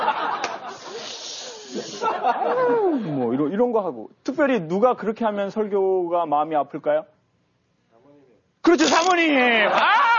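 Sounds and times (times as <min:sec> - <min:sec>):
laughter: 0:00.0 - 0:01.1, 0:01.8 - 0:03.1
person voicing a breathy hiss: 0:00.7 - 0:02.1
speech: 0:02.4 - 0:07.2, 0:08.7 - 0:10.0.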